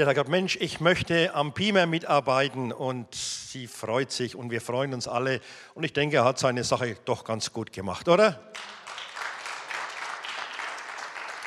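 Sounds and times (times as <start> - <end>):
speech: 0.0 - 8.8
audience applause: 8.6 - 11.4.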